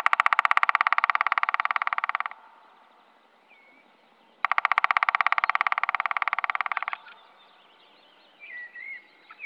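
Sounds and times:
black woodpecker drumming: 0:00.0 - 0:02.6, 0:04.4 - 0:07.2
faint bird calls: 0:00.0 - 0:09.4.

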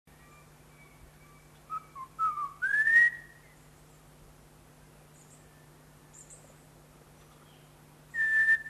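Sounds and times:
greater ground-robin giving whistled notes: 0:00.2 - 0:03.6, 0:08.2 - 0:08.6.

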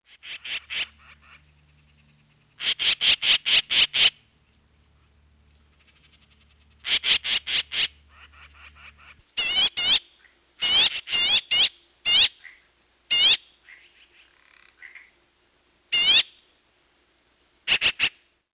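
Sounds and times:
yellow-billed magpie calling: 0:00.1 - 0:04.2, 0:05.7 - 0:15.2, 0:15.9 - 0:16.4, 0:17.7 - 0:18.3.

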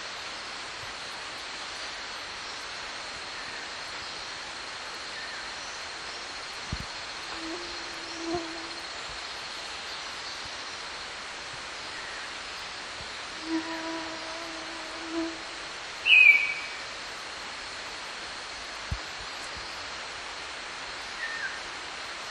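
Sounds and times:
steady hiss: 0:00.0 - 0:22.2
green-backed robin whistling: 0:16.0 - 0:16.8.

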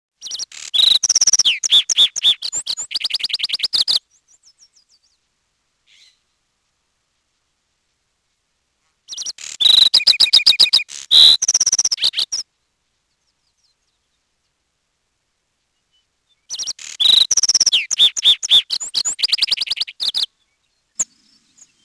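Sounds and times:
lark sparrow singing: 0:00.2 - 0:05.2, 0:05.9 - 0:06.2, 0:09.1 - 0:14.3, 0:15.7 - 0:21.8.

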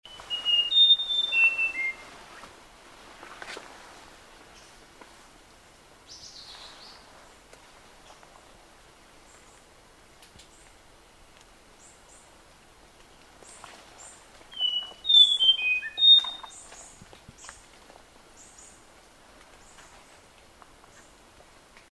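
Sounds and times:
lesser ground robin calling: 0:00.1 - 0:02.1, 0:14.5 - 0:17.6.

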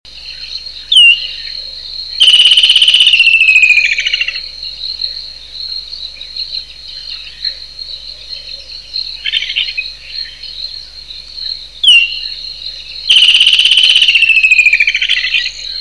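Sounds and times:
woodland kingfisher calling: 0:00.1 - 0:04.8, 0:08.3 - 0:15.7.

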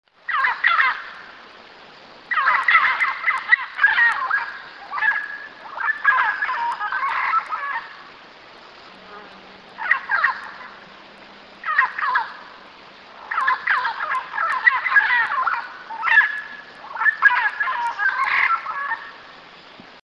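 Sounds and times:
red-browed parrot calling: 0:00.3 - 0:01.2, 0:02.3 - 0:08.0, 0:09.8 - 0:10.8, 0:11.6 - 0:19.2.

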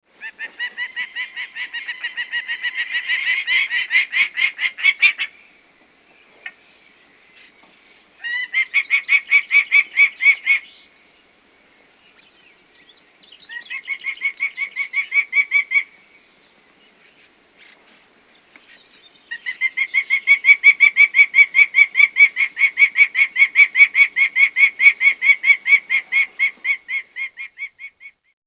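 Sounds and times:
prairie falcon calling: 0:00.2 - 0:05.4, 0:08.2 - 0:10.9, 0:13.4 - 0:16.0, 0:18.6 - 0:28.3.

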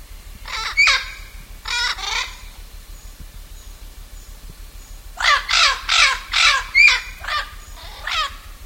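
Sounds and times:
steady low hum: 0:00.0 - 0:08.6
blue-fronted amazon parrot squawking: 0:00.5 - 0:02.4, 0:05.2 - 0:08.3.

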